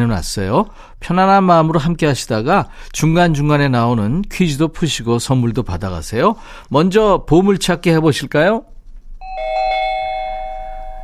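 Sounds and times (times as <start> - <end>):
speech: 0.0 - 9.5
doorbell two-tone ding-dong chime: 9.2 - 11.0.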